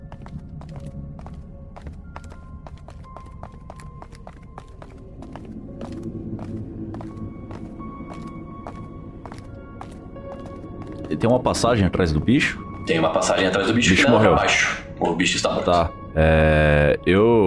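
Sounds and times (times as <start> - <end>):
heavy footsteps climbing a staircase: 0.0 - 11.2
low rumbling background: 0.0 - 13.9
speech: 11.1 - 17.4.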